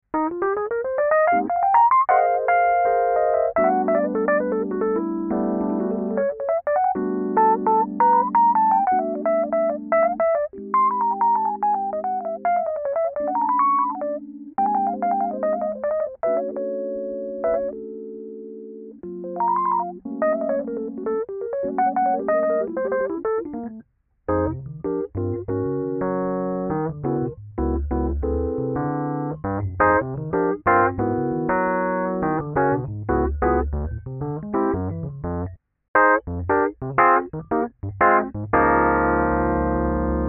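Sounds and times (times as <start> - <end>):
Fender Rhodes Mark I electric piano on stage setting: 0.0 - 40.2.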